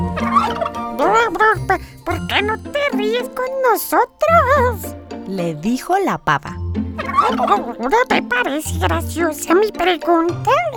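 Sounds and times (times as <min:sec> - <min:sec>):
turkeys gobbling and cackling: 0:00.0 - 0:01.6, 0:07.0 - 0:07.8
speech: 0:01.2 - 0:10.7.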